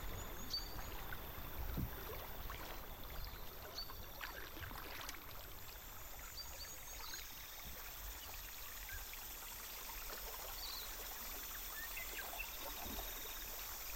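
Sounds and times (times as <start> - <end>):
Whanganui River water flowing: 0.0 - 13.9.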